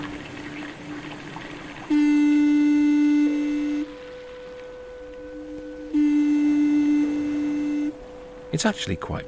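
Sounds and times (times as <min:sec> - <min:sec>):
deep foghorn blasts in a concert recording: 0:01.9 - 0:09.2
quieter horns at other pitches: 0:01.9 - 0:09.2
speech: 0:08.6 - 0:09.2.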